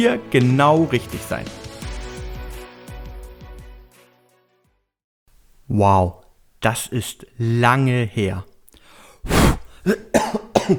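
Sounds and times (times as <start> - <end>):
speech: 0.0 - 1.7, 5.7 - 8.5, 9.2 - 10.7
air blown onto a microphone to clear off dust: 9.2 - 9.7
person coughing to clear throat: 9.3 - 10.7.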